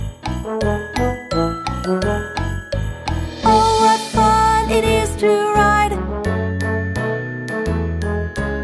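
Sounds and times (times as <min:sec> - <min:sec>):
sleigh bells jingling: 0:00.0 - 0:05.9
upbeat instrumental melody: 0:00.0 - 0:08.6.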